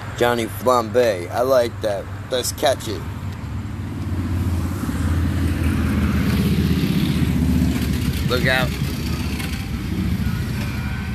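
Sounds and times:
speech: 0.2 - 3.2, 8.3 - 8.8
pack of motorcycle club riders rumbling by: 3.6 - 11.1.

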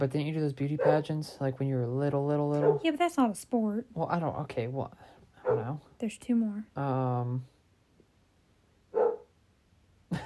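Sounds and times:
speech: 0.0 - 7.5
dog barking in short sharp bursts: 0.8 - 1.1, 2.6 - 2.9, 5.4 - 5.8, 8.9 - 9.3.

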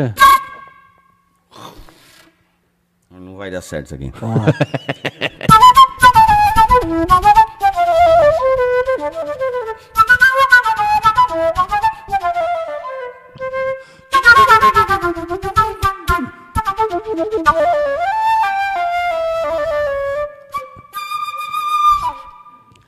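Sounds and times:
speech: 0.0 - 0.2, 3.2 - 5.3
transverse flute playing a wavering melody: 0.0 - 1.3, 5.5 - 22.8
laughter: 4.2 - 5.5.

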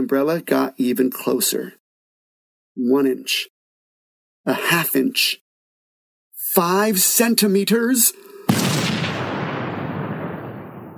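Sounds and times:
speech: 0.0 - 1.8, 2.8 - 3.5, 4.4 - 5.4, 6.5 - 8.9
loud explosion: 8.5 - 10.9.

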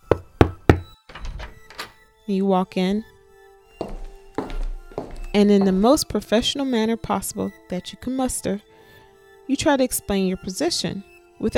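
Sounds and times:
firm knocks on a wooden door: 0.1 - 1.0
speech: 2.3 - 3.1, 5.3 - 8.7, 9.5 - 11.5.

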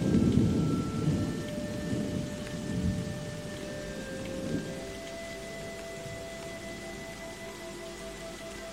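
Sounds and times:
deep rolling rumble of thunder: 0.0 - 5.0
steady rain pouring down: 0.0 - 8.7.

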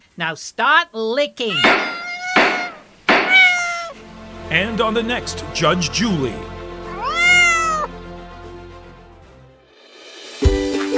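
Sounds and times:
speech: 0.2 - 2.0, 4.5 - 6.6
cat meowing: 1.5 - 4.0, 6.8 - 7.9.

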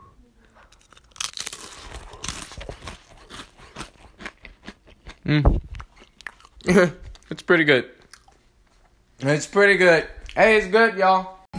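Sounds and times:
crunchy crackers being bitten and chewed: 0.4 - 7.4, 8.0 - 8.9
speech: 5.3 - 5.7, 6.6 - 8.0, 9.2 - 11.4.

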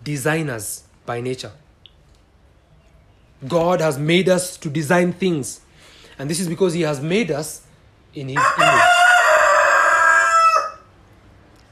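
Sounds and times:
speech: 0.0 - 1.6, 3.4 - 5.6, 6.2 - 8.8
rooster crowing: 8.4 - 11.0.

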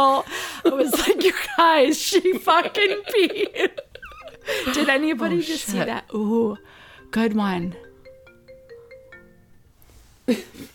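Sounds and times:
speech: 0.0 - 3.9, 4.5 - 7.9, 10.3 - 10.7
laughter: 2.1 - 5.9
phone ringtone: 4.2 - 9.7
rustling noise: 9.7 - 10.7.

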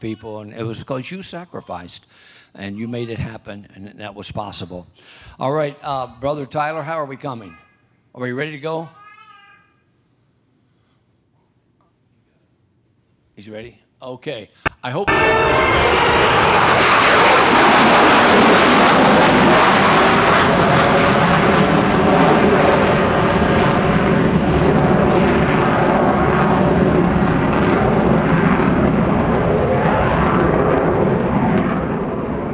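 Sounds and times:
speech: 0.0 - 7.6, 8.2 - 9.0, 13.4 - 17.0
fast jet plane roaring past: 15.1 - 32.5.

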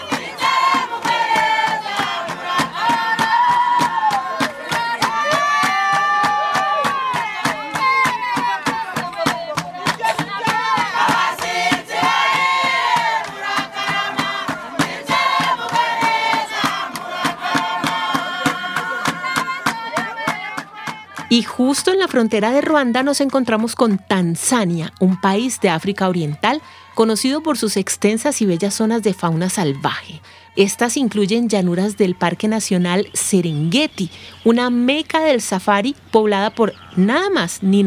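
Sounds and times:
handclaps: 0.0 - 29.8
steady rapid drumbeats of traditional dance music: 0.0 - 29.9
people shouting: 0.0 - 35.4
loud group of voices chanting and singing: 0.0 - 37.8
speech: 21.4 - 37.8.

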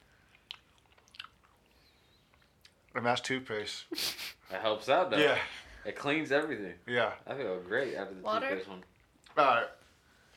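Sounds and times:
wet chewing sounds: 0.0 - 2.9
speech: 3.0 - 9.8.

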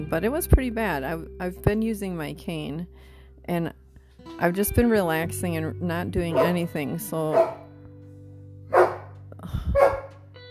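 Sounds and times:
speech: 0.0 - 7.6
dog barking: 6.3 - 6.6, 7.3 - 7.6, 8.7 - 9.1, 9.8 - 10.1.

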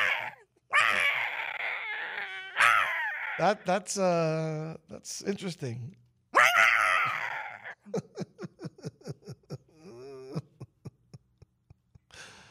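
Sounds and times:
cat yowling: 0.0 - 3.6, 6.4 - 7.8
speech: 3.4 - 6.0
laughter: 7.8 - 12.0.

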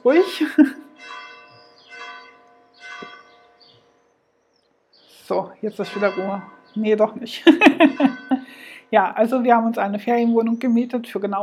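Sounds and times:
speech: 0.0 - 1.2, 5.3 - 8.3, 8.9 - 11.4
church bells ringing: 0.0 - 4.0, 5.3 - 9.7
laughter: 7.4 - 8.5.

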